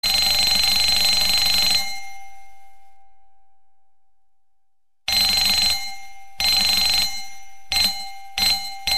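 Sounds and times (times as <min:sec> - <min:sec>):
Christmas alarm: 0:00.0 - 0:02.7, 0:05.1 - 0:08.8.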